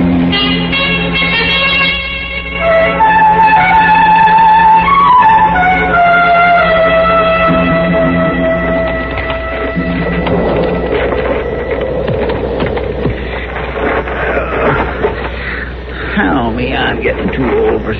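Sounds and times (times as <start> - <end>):
sustained tones and murmuring: 0.0 - 17.9
horse hooves clip-clopping at a walk on the prairie: 8.2 - 15.2.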